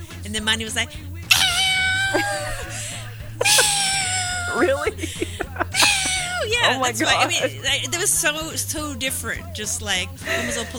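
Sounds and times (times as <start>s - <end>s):
laughter: 0.0s - 10.7s
speech: 0.3s - 1.1s, 2.1s - 3.5s, 4.5s - 10.7s
cat yowling loudly: 1.3s - 7.6s.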